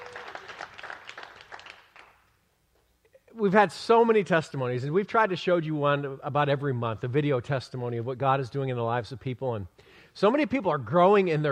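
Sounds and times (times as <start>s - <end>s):
congregation applauding: 0.0s - 2.3s
speech: 3.4s - 11.4s.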